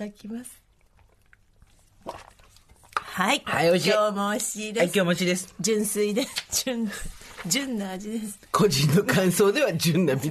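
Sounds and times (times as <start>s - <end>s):
speech: 0.0s - 0.6s, 3.2s - 10.2s
sip of filtered water: 0.7s - 3.2s.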